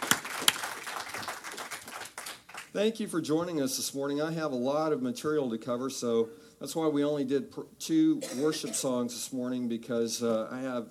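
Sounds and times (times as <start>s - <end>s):
crowd applauding: 0.0s - 2.8s
speech: 2.8s - 10.8s.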